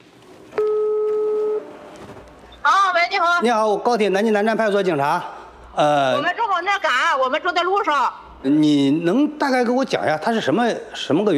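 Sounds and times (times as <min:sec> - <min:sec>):
telephone call ringing tone: 0:00.6 - 0:01.9
speech: 0:03.2 - 0:11.3.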